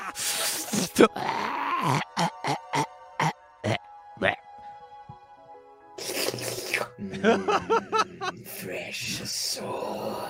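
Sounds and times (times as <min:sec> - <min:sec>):
voice imitating a wailing moan: 0:00.0 - 0:03.8
speech: 0:01.0 - 0:02.3, 0:08.9 - 0:10.2
laughter: 0:07.0 - 0:08.5.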